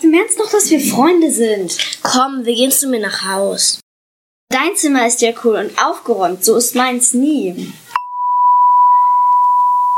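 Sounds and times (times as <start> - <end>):
speech: 0.2 - 3.8, 4.5 - 7.9
phone notification tone for an incoming message: 8.0 - 9.9
steady pure beep: 8.0 - 9.9.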